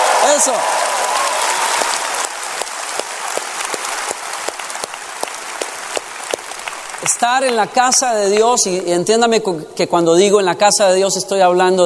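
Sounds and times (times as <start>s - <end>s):
audience clapping: 0.0s - 8.8s
speech: 0.4s - 0.8s, 7.1s - 11.8s.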